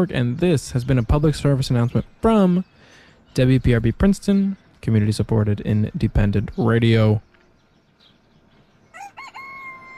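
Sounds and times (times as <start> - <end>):
speech: 0.0 - 2.7, 3.3 - 7.3
rooster crowing: 8.9 - 9.9.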